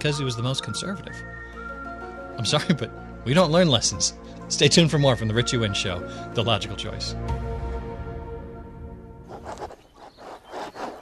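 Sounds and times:
speech: 0.0 - 1.6, 2.4 - 7.5
antique fountain pen scratching across linen paper: 9.3 - 10.9.

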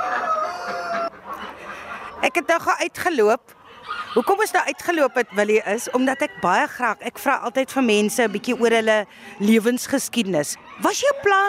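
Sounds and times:
rooster crowing: 0.0 - 1.1
laughter: 0.8 - 7.2, 7.8 - 9.6
speech: 2.2 - 3.6, 4.2 - 11.4.

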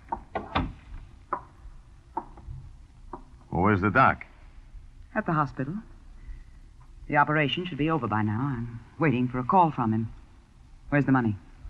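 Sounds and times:
reception room door in a doctor's office closing with wooden thumps: 0.0 - 1.4
speech: 3.6 - 4.3, 5.2 - 5.9, 7.1 - 10.2, 10.9 - 11.4.

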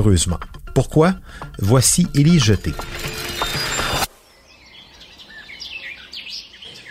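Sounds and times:
speech: 0.0 - 3.1
birds chirping outdoors in the morning: 1.2 - 6.8
loud grinding mechanical noise: 2.7 - 4.1.

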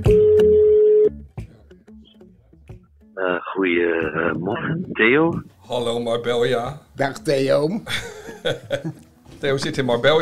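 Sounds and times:
telephone ringing tone: 0.2 - 1.1
speech: 3.7 - 10.2
laughter: 7.9 - 9.0.

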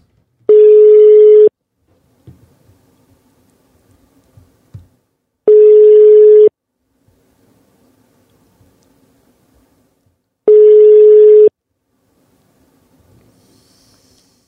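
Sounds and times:
phone ringback tone while calling: 0.5 - 1.5, 5.5 - 6.5, 10.5 - 11.5.

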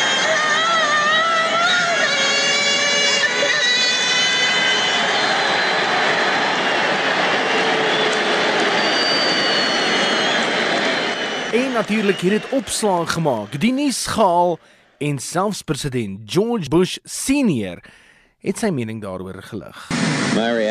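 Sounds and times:
stadium crowd whistling: 0.0 - 15.2
large stadium crowd roaring: 3.4 - 14.6
speech: 11.8 - 20.6.

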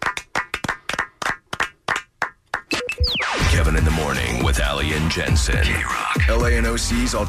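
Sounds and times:
people clapping: 0.0 - 2.8
speech: 3.7 - 7.2.

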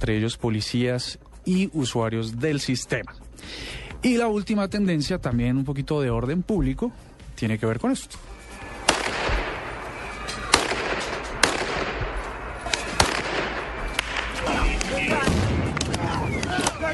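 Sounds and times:
speech: 0.0 - 8.4
roar of street commotion and raised crowd voices: 8.2 - 16.9
sharp loud gunshot-like bangs in street unrest: 8.8 - 9.7, 10.5 - 14.3, 15.1 - 16.1.

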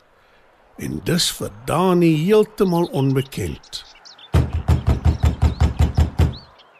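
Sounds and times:
faint birdsong chirping: 0.0 - 6.7
speech: 0.8 - 4.0
firm knocks on a wooden front door: 4.3 - 6.5.

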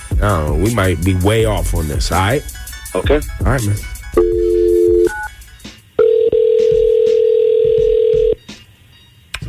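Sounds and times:
speech: 0.2 - 4.4
telephone dial tone: 6.0 - 8.4.

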